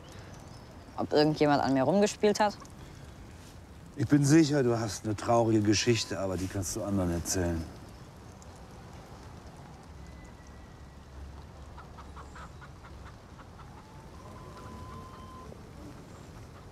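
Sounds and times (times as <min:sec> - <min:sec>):
steady noise: 0:00.0 - 0:16.7
speech: 0:01.0 - 0:02.7, 0:04.0 - 0:07.8
chickens clucking: 0:11.7 - 0:16.7.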